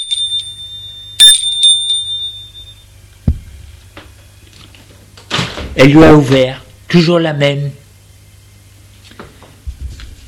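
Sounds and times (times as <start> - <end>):
doorbell ringing at a woman's home: 0.0 - 2.8
low thump: 3.3 - 3.6
speech: 5.8 - 7.8.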